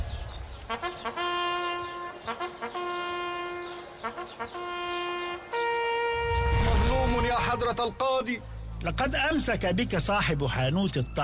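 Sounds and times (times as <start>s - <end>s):
donkey hooves clip-clopping: 0.2s - 6.4s
speech: 4.3s - 4.9s, 7.5s - 11.2s.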